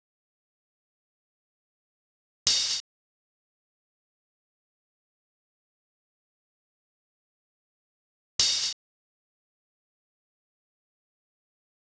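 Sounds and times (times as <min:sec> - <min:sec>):
open hi-hat: 0:02.5 - 0:02.8, 0:08.4 - 0:08.8.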